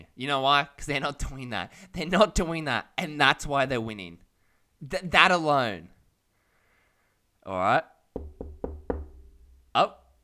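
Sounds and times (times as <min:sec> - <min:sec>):
speech: 0:00.2 - 0:04.2, 0:04.8 - 0:06.0, 0:07.4 - 0:08.3, 0:09.8 - 0:10.0
sharp knocks on a door: 0:08.2 - 0:09.6.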